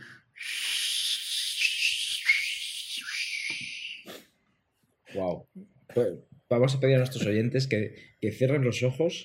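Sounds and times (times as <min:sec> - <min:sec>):
person making a breathy whistling whoosh with their mouth: 0:00.0 - 0:04.2
speech: 0:05.2 - 0:09.2.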